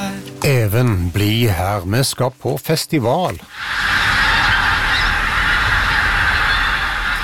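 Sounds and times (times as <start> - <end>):
speech: 0.4 - 4.1
large flocks of pink-footed geese honking near a rural village in Trøndelag, Norway: 3.5 - 7.2.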